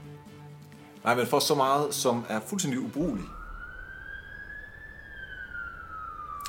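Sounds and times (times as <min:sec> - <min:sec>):
speech: 0:01.0 - 0:03.4
ambulance siren wailing as it passes: 0:01.7 - 0:06.4.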